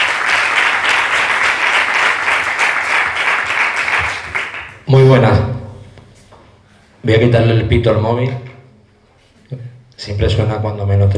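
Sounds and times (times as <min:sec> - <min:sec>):
audience applause at a startup meeting welcoming a speaker: 0:00.0 - 0:04.8
speech: 0:04.9 - 0:05.5, 0:07.0 - 0:08.4, 0:09.5 - 0:11.1.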